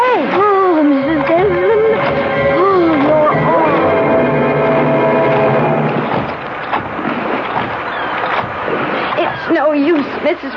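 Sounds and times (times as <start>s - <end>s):
water churning and rushing from a sinking boat: 0.0s - 10.5s
low droning tone: 0.6s - 6.4s.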